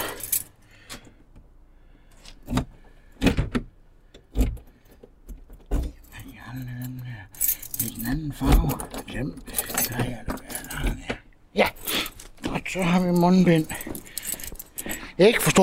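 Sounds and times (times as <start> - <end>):
keys jingling as they are stuffed into a pocket: 0.0 - 0.6, 4.6 - 11.1, 11.7 - 15.6
speech: 9.2 - 9.6, 12.8 - 13.9, 15.2 - 15.6.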